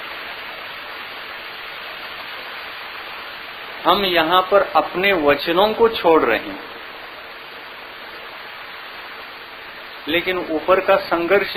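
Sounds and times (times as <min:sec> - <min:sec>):
heavy rain pouring down: 0:00.0 - 0:11.5
speech: 0:03.8 - 0:06.7, 0:10.1 - 0:11.5.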